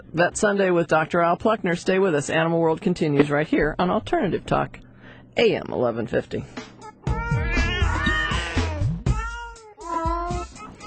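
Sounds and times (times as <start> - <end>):
speech: 0.1 - 6.7
unhappy cats meowing and yowling in distress: 7.1 - 10.6.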